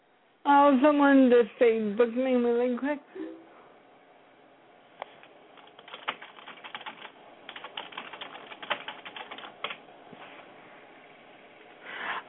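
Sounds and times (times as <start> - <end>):
speech: 0.4 - 3.3
computer keyboard keys clicking: 5.6 - 9.8.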